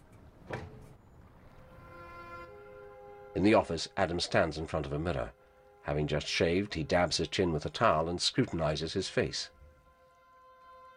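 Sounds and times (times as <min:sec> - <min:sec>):
office door shutting with a soft thud: 0:00.4 - 0:00.9
speech: 0:03.4 - 0:09.6.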